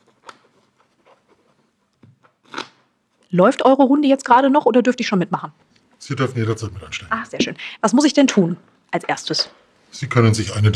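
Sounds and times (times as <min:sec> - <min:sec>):
playing cards being shuffled during a card game: 0:00.0 - 0:02.9
speech: 0:03.3 - 0:10.7.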